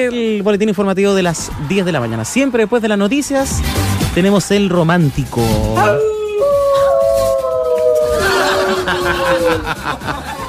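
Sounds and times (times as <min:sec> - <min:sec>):
speech: 0:00.0 - 0:06.2, 0:09.0 - 0:10.4
wolves howling: 0:05.8 - 0:09.6
laughter: 0:08.1 - 0:10.4.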